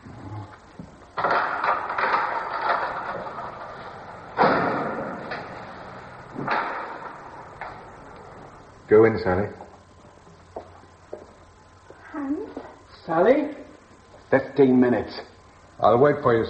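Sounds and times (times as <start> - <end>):
heavy door hauled open with clunks and rumbling scrapes: 1.2 - 8.5
speech: 8.9 - 9.6, 13.1 - 13.6, 14.3 - 16.4.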